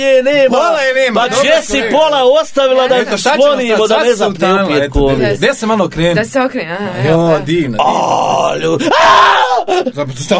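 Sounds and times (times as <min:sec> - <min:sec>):
speech: 0:00.0 - 0:10.3
vocal sounds: 0:06.7 - 0:09.1
person screaming: 0:07.8 - 0:09.8.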